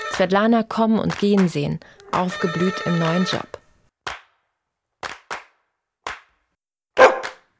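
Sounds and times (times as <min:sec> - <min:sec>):
speech: 0:00.2 - 0:03.6
dog barking in front of a stove: 0:07.0 - 0:07.4.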